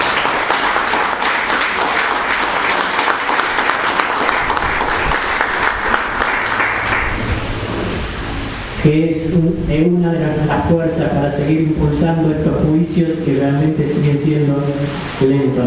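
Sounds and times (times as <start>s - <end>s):
crowd clapping for a speaker: 0.0s - 7.7s
speech: 8.8s - 15.6s.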